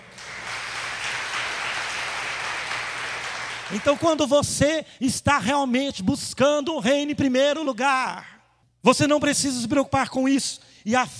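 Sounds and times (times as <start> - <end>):
audience applause: 0.0 - 4.2
speech: 3.7 - 11.1.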